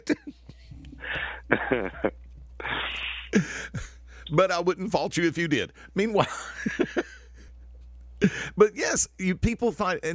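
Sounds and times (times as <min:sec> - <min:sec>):
speech: 0:01.1 - 0:02.2, 0:02.9 - 0:07.1, 0:08.2 - 0:10.1
person coughing: 0:01.2 - 0:04.0.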